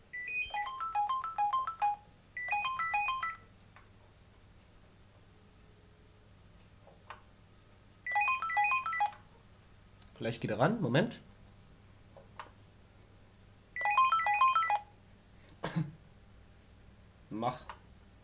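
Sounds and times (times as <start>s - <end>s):
rapid electronic telephone ringtone while calling an answering machine: 0.1s - 3.5s, 8.1s - 9.2s, 13.8s - 14.9s
speech: 10.2s - 11.3s.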